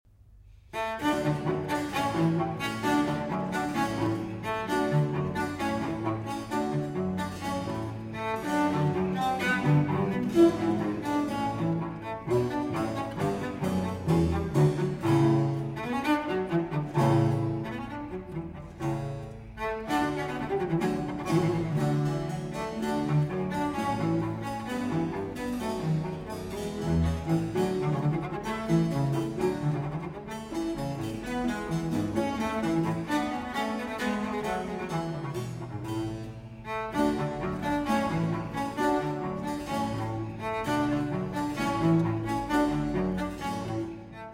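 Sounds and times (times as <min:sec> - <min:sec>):
cello sonata movement in E-flat major: 0:00.1 - 0:44.3.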